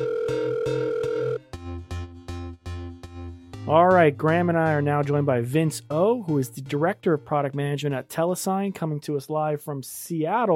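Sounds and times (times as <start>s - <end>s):
steady phone dial tone: 0.0s - 1.5s
speech: 3.7s - 10.5s.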